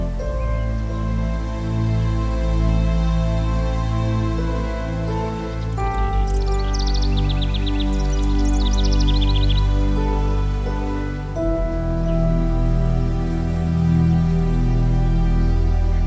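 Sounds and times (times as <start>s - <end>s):
soft sustained relaxation music: 0.0s - 16.0s
bird singing chirping phrases: 4.6s - 16.0s.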